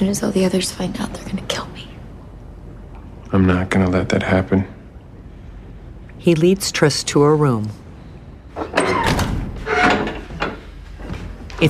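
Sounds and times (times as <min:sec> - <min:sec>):
speech: 0:00.0 - 0:01.9, 0:03.3 - 0:04.8, 0:06.2 - 0:07.8
door sliding and bumping shut: 0:08.6 - 0:10.3.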